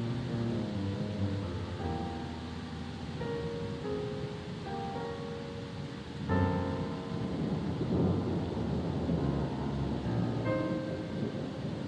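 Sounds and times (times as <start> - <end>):
soft sustained music notes: 0.0 - 11.8
low roar of storm and sea: 3.1 - 11.8
rumbling thunder: 6.1 - 11.8.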